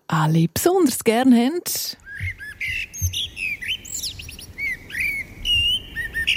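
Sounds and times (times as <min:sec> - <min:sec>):
speech: 0:00.1 - 0:02.8
birds chirping and tweeting with whistled notes and trills: 0:02.0 - 0:06.3.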